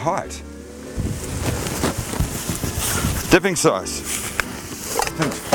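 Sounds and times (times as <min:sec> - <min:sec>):
speech: 0:00.0 - 0:00.5, 0:03.3 - 0:04.3, 0:05.2 - 0:05.4
gusty wind buffeting the microphone outdoors: 0:00.9 - 0:03.4.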